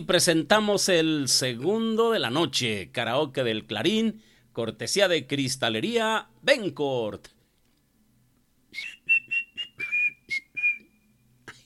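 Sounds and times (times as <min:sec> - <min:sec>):
speech: 0:00.0 - 0:07.4, 0:08.7 - 0:09.0
whistled tune: 0:08.7 - 0:11.4.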